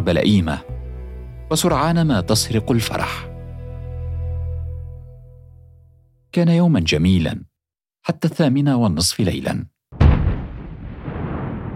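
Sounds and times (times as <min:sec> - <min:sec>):
speech: 0:00.0 - 0:00.7, 0:01.5 - 0:03.3, 0:06.3 - 0:09.7
bomb explosion: 0:10.0 - 0:11.7.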